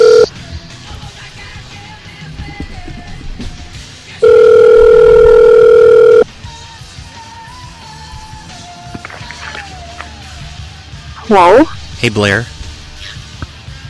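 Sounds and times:
phone line ringback tone: 0.0 - 0.3, 4.2 - 6.3
speech: 11.3 - 12.6.

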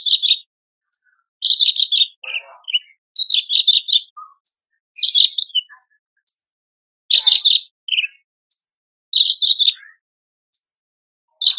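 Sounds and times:
Horsfield's bush lark singing: 0.0 - 11.5.

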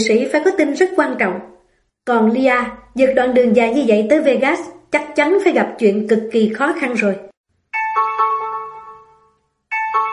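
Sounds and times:
speech: 0.0 - 7.3
two-tone doorbell chime at a hotel room door: 7.7 - 10.1.

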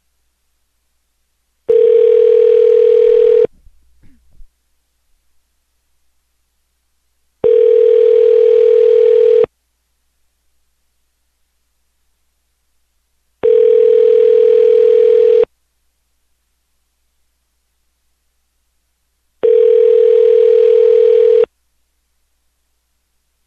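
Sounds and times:
telephone dial tone bursts while calling an office: 1.7 - 3.5, 7.4 - 9.5, 13.4 - 15.5, 19.4 - 21.5.

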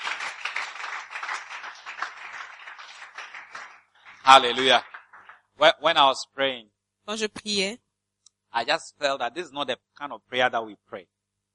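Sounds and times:
audience clapping hands: 0.0 - 5.5
speech: 4.2 - 4.9, 5.6 - 7.8, 8.5 - 11.2.

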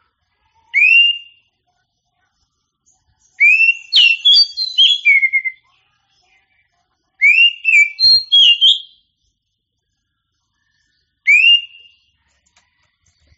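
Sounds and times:
oriental magpie-robin whistled song: 0.8 - 1.4, 3.4 - 5.6, 7.2 - 9.0, 11.3 - 12.0.

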